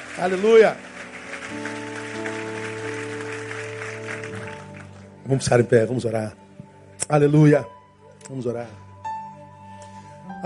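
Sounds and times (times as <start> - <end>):
audience at a church service applauding: 0.0 - 5.5
speech: 0.2 - 0.9, 1.5 - 2.0, 5.3 - 6.4, 7.1 - 7.7, 8.3 - 8.9.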